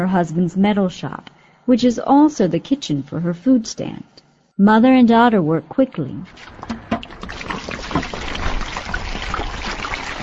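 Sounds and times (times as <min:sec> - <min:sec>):
speech: 0:00.0 - 0:06.8
sharp knocks and splashes: 0:06.3 - 0:10.2
water pouring and trickling in a metal shop kitchen: 0:06.3 - 0:10.2.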